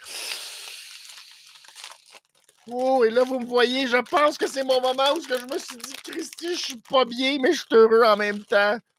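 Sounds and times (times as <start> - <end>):
plastic wrapper crinkling as orange licorice is taken out: 0.1 - 8.9
speech: 2.6 - 8.9.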